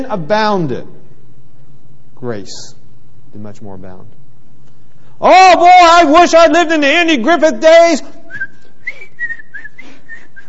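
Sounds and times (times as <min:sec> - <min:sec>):
speech: 0:00.0 - 0:01.0, 0:02.2 - 0:04.2, 0:05.2 - 0:08.5
person whistling a wavering melody: 0:08.3 - 0:10.4.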